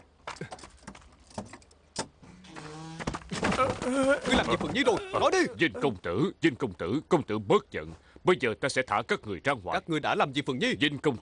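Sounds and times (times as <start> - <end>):
door creaking as it swings open: 1.3 - 4.9
speech: 3.6 - 11.2.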